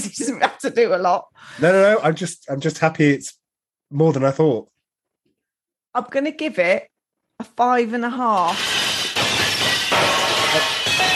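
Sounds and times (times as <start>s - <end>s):
speech: 0.0s - 4.7s, 6.0s - 8.8s
breaking dishes and shattering crockery crashing: 8.4s - 11.1s.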